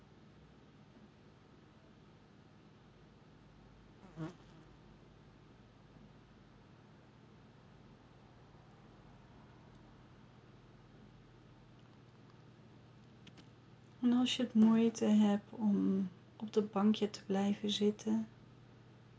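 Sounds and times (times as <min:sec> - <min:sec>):
bee or fly buzzing past: 0:04.0 - 0:04.7
speech: 0:04.2 - 0:04.4, 0:14.0 - 0:18.4.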